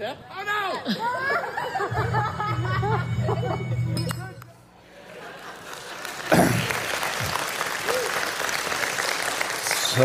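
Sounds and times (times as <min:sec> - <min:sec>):
speech: 0:00.0 - 0:01.3
laughter: 0:00.8 - 0:04.0, 0:04.8 - 0:06.9
audience applause: 0:05.3 - 0:10.0.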